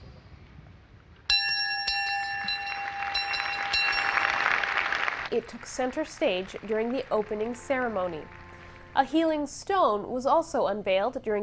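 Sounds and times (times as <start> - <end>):
building hiss: 0.0 - 11.4
pilgrim bell of the Eucharistic Congress in Dublin Ireland ringing: 1.3 - 5.2
speech: 5.3 - 8.4, 9.0 - 11.4.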